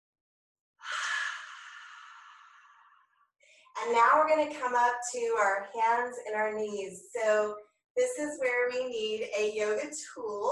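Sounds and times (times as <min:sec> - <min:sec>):
long breath exhaled during a yoga stretch: 0:00.8 - 0:03.7
speech: 0:03.8 - 0:10.5.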